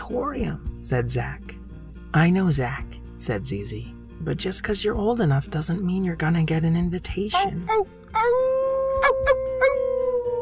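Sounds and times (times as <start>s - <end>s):
speech: 0.1s - 9.8s
werewolf howling: 7.4s - 10.4s.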